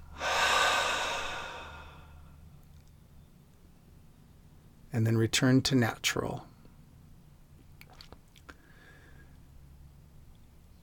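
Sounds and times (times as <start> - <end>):
double exhale through open mouth: 0.0 - 2.3, 8.5 - 9.4
deep breathing during a guided relaxation exercise: 0.0 - 2.4, 8.6 - 9.4
speech: 5.0 - 6.5.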